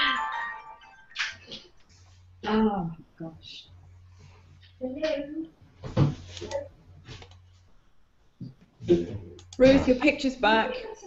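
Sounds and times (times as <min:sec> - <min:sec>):
phone ringtone of incoming call: 0:00.0 - 0:01.5
speech: 0:02.4 - 0:03.7, 0:04.8 - 0:07.2, 0:08.8 - 0:11.0.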